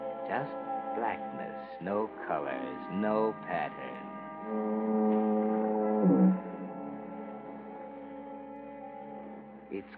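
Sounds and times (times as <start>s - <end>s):
speech: 0.3s - 6.4s, 9.7s - 9.9s
foghorn at a point moaning in fog and drizzle: 4.4s - 7.3s.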